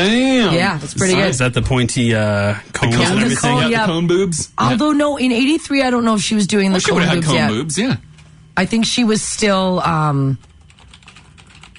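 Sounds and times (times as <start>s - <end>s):
speech: 0.0s - 10.5s
computer keyboard typing: 10.5s - 11.7s.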